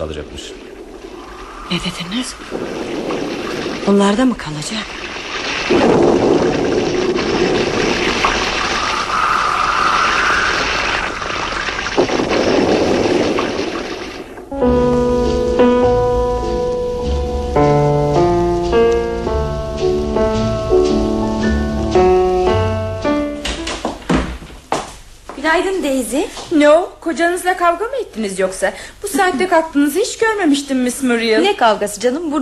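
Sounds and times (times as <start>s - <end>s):
speech: 0.0s - 0.7s, 1.7s - 5.1s, 5.7s - 7.6s, 26.1s - 32.4s
heavy downpour in a storm: 0.0s - 23.1s
music: 14.5s - 23.8s.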